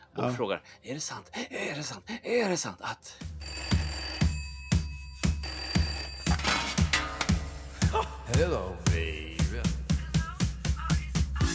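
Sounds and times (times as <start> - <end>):
speech: 0.2 - 3.6, 8.3 - 9.3
steady punchy drum beat: 3.2 - 11.5
telephone bell ringing inside a piece of music: 3.4 - 7.0.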